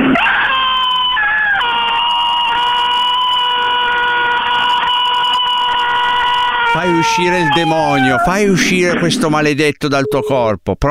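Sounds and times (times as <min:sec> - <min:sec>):
woman screaming during an exorcism prayer: 0:00.2 - 0:08.4
speech: 0:07.1 - 0:10.8.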